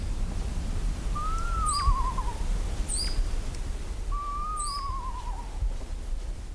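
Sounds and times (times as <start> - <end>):
steady hiss: 0.0 - 6.5
adult owl singing wavering descending trills: 1.2 - 3.2, 4.1 - 5.6.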